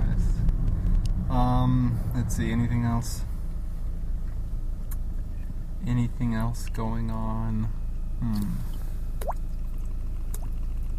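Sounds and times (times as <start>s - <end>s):
low steady hum: 0.0s - 10.9s
speech: 1.7s - 3.3s, 5.8s - 8.8s
cheek flick water-drop plinks in freezing cold morning air: 9.2s - 10.6s.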